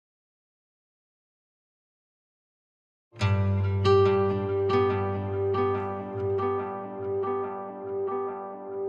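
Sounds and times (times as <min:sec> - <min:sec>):
acoustic guitar arpeggio: 0:03.2 - 0:08.7.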